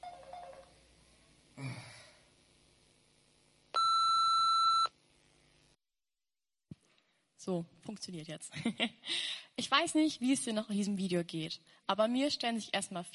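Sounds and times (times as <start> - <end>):
answering machine switched on giving a long electronic beep: 3.8 - 4.9
speech: 7.4 - 13.1.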